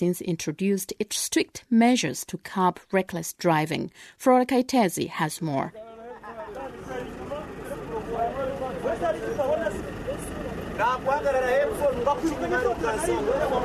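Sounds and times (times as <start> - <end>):
speech: 0.0 - 5.9, 10.8 - 13.6
low engine and traffic rumble at a bus station: 5.7 - 13.6
many overlapping voices chattering at a busy bus station: 5.8 - 13.6.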